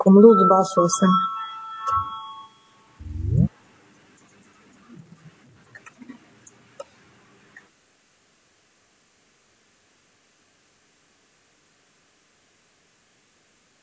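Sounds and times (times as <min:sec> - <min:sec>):
speech: 0:00.0 - 0:02.1
bell rung to call a parliamentary vote, ding with low thump: 0:01.9 - 0:02.3
short louder rising tone: 0:03.0 - 0:03.5.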